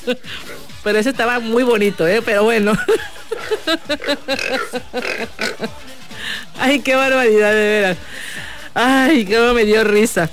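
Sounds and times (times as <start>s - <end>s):
speech: 0.0s - 5.3s, 6.6s - 8.1s, 8.8s - 10.3s
pig oinking in short nasal grunts: 0.2s - 0.8s, 3.2s - 5.7s
laughter: 1.6s - 6.8s.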